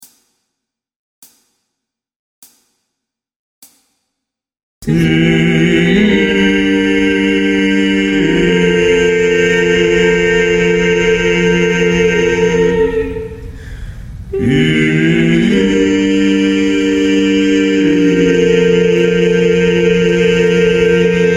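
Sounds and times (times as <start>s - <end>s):
bass: 4.8s - 21.3s.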